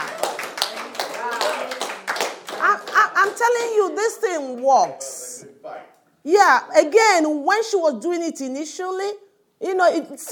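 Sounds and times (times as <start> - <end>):
church congregation clapping after a testimony: 0.0 - 5.1
speech: 3.4 - 5.1, 6.2 - 10.3.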